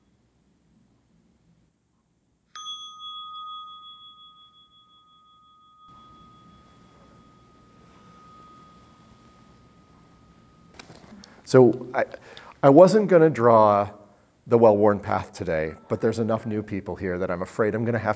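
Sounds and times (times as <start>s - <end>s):
quiet room hum: 0.0s - 18.1s
meditation bell ringing: 2.5s - 11.5s
speech: 11.5s - 18.1s.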